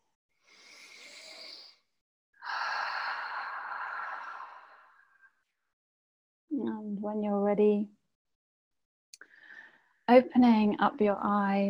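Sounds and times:
deep breath with sighing exhale: 0.5s - 5.3s, 9.2s - 10.0s
speech: 6.6s - 8.0s, 10.1s - 11.6s.

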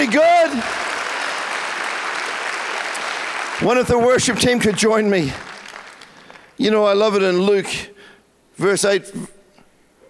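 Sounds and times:
speech: 0.0s - 0.8s, 3.6s - 5.5s, 6.6s - 7.9s, 8.6s - 9.4s
audience clapping at a worship service: 0.0s - 6.6s.

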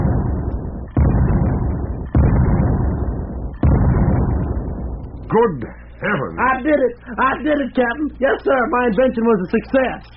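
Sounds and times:
cannon firing a powder charge: 0.0s - 5.6s
speech: 5.3s - 10.1s.

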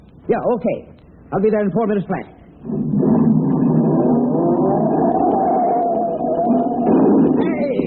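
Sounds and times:
speech: 0.3s - 3.5s
taxi engine revving and driving off: 2.6s - 7.4s.

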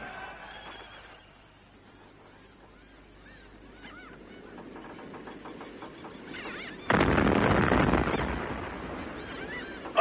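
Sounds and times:
artillery guns firing: 4.6s - 10.0s
loud artillery blast turning into a long heavy roar: 6.9s - 10.0s.

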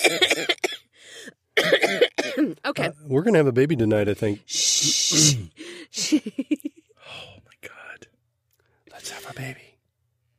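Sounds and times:
speech: 0.0s - 0.2s, 3.1s - 5.4s
harsh coughing: 0.0s - 2.6s, 5.0s - 6.2s
raspy inhale: 0.9s - 1.4s, 5.6s - 6.0s.

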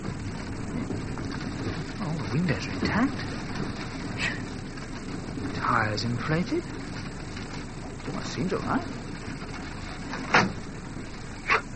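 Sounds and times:
steady low noise: 0.0s - 11.7s
speech: 2.3s - 4.4s, 5.6s - 6.8s, 8.1s - 9.0s
unlocked bus door opening in the rain: 10.0s - 11.4s.

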